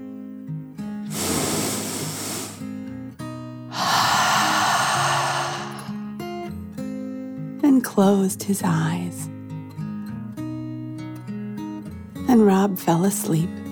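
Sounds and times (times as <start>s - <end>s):
deep breath in and out: 1.1s - 2.7s, 3.7s - 6.0s
speech: 7.8s - 9.4s, 12.3s - 13.6s.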